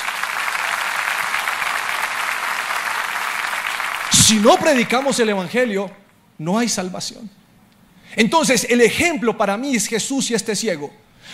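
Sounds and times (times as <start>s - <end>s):
church audience applauding: 0.0s - 5.5s
speech: 4.1s - 7.4s, 8.1s - 11.3s.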